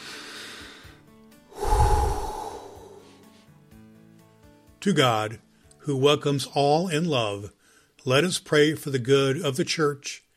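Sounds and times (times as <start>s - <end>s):
deep breath before a prayer: 0.0s - 3.5s, 7.6s - 8.0s
speech: 4.8s - 10.2s.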